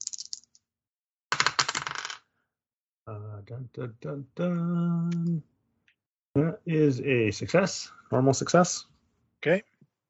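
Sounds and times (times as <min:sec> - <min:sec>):
dice rolled for a skill check in a tabletop role-playing game: 0:00.0 - 0:00.6, 0:01.4 - 0:02.2
speech: 0:03.1 - 0:05.5, 0:06.4 - 0:09.7.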